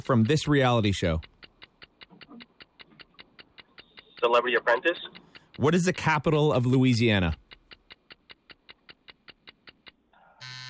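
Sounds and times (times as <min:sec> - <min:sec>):
speech: 0:00.0 - 0:01.3, 0:04.2 - 0:07.4
sharp countdown ticks: 0:00.0 - 0:10.6
loud harsh game show buzzer blaring: 0:10.4 - 0:10.6.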